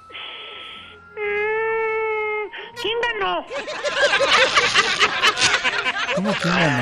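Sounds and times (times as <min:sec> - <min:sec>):
person crying: 0:01.2 - 0:02.8
speech: 0:02.8 - 0:06.8
laughter: 0:03.5 - 0:06.8.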